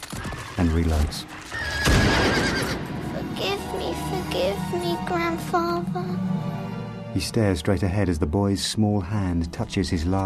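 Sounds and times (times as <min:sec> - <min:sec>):
speech: 0:00.6 - 0:01.6, 0:03.4 - 0:06.5, 0:07.1 - 0:10.2
horse neighing as a wolf attacks it in the snow: 0:01.5 - 0:02.9.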